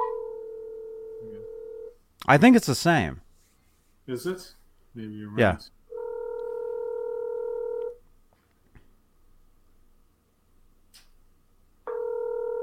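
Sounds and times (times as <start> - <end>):
phone ringback tone while calling a cell phone: 0.0 - 1.9, 5.9 - 8.0, 11.9 - 12.6
speech: 2.3 - 3.2, 4.1 - 5.8.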